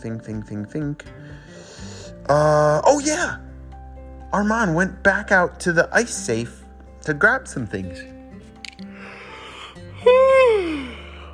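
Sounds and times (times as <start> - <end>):
speech: 0.0 - 3.4, 4.3 - 8.2
person yawning: 10.0 - 11.2.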